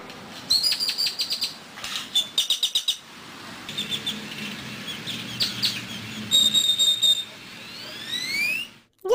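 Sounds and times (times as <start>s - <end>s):
grackles calling: 0.5s - 3.1s, 3.7s - 8.9s.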